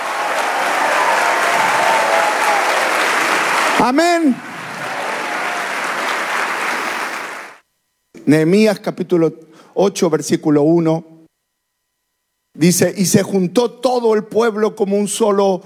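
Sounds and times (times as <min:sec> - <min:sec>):
large crowd applauding: 0:00.0 - 0:07.6
speech: 0:03.8 - 0:04.5, 0:08.3 - 0:11.1, 0:12.6 - 0:15.6.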